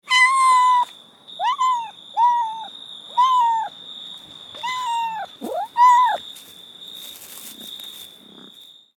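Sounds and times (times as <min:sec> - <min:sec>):
domestic cat meowing: 0:00.1 - 0:03.7, 0:04.6 - 0:06.2.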